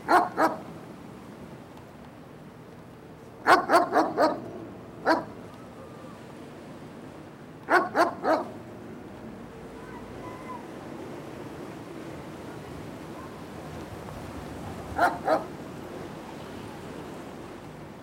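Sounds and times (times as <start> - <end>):
dog barking: 0.1 - 0.6, 3.4 - 4.4, 5.1 - 5.3, 7.7 - 8.6, 15.0 - 15.5.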